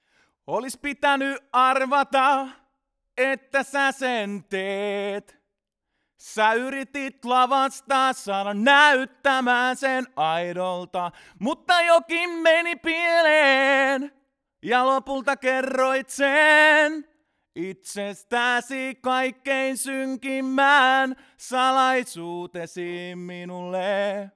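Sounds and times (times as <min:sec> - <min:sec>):
male vocal: 0:00.5 - 0:05.4, 0:06.2 - 0:24.3.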